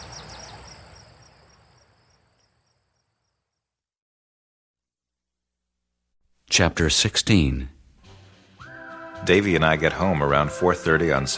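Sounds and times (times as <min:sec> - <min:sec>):
crickets chirping at night among campers' tents: 0:00.0 - 0:03.7
speech: 0:06.6 - 0:07.8, 0:09.2 - 0:11.3.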